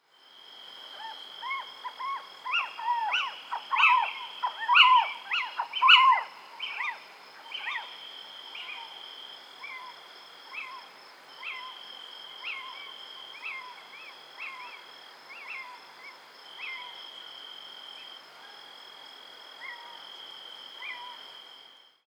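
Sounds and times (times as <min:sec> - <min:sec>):
Athene noctua call: 0:00.9 - 0:07.9, 0:12.4 - 0:17.0.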